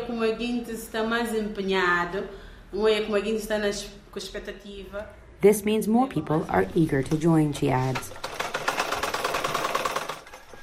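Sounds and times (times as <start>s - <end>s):
speech: 0.1s - 8.4s
fashion designer's sewing machine stitching: 7.6s - 10.6s.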